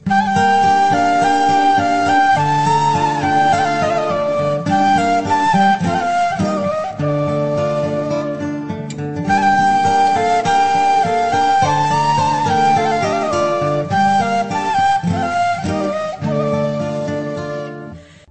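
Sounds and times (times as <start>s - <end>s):
music: 0.0s - 18.2s.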